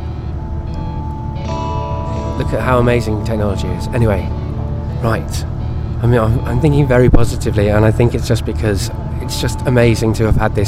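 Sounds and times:
bus interior in motion with engine drone and road noise: 0.0 - 10.6
faint higher whine: 0.0 - 10.6
speech: 2.4 - 4.4, 5.0 - 10.6.

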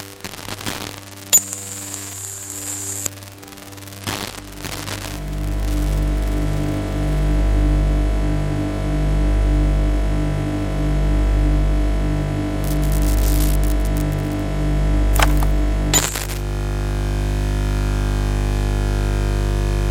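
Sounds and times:
sharp electrical crackles and hissing bursts: 0.0 - 7.4, 12.6 - 14.5, 15.1 - 19.9
deep electrical hum from a high-voltage transformer station: 0.0 - 19.9.

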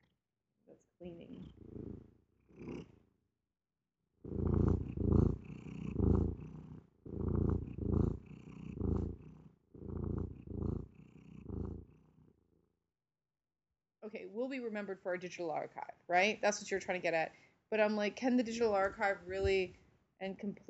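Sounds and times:
speech: 1.0 - 1.7, 14.4 - 20.6
male cat purring: 1.0 - 3.0, 4.2 - 12.4.

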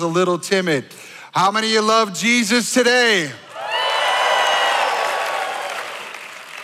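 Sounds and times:
speech: 0.0 - 3.4
large church audience cheering and shouting: 3.5 - 6.3
whoops: 3.6 - 6.3
applause: 3.6 - 6.6.

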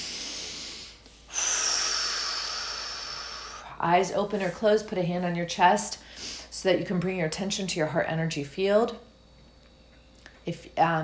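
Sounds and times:
deep breath during a calming exercise: 0.0 - 3.8
speech: 3.8 - 9.1, 10.4 - 11.0.

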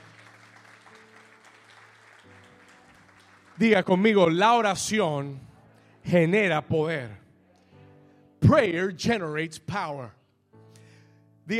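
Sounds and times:
crowd clapping: 0.0 - 4.8
speech: 3.6 - 5.5, 6.1 - 7.2, 8.5 - 10.2.

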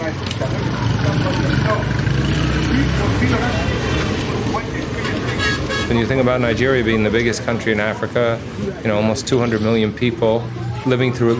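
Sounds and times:
murmur of many voices from a crowd on a street in Lagos Nigeria: 0.0 - 11.3
street traffic with engines rumbling in Lagos Nigeria: 0.0 - 11.3
speech: 5.9 - 11.3.

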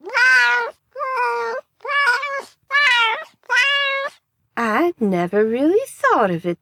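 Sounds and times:
cat meowing: 0.0 - 4.2
speech: 5.0 - 6.6.

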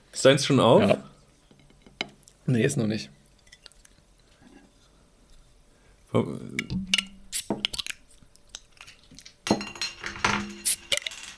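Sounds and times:
speech: 0.2 - 1.1, 2.5 - 3.2, 6.1 - 6.9
glass bottles clinking together in a toast: 8.6 - 11.3.

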